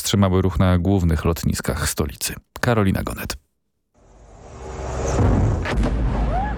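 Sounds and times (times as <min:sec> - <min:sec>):
speech: 0:00.1 - 0:03.4
heavy low explosion booms during a drone attack: 0:05.1 - 0:06.5.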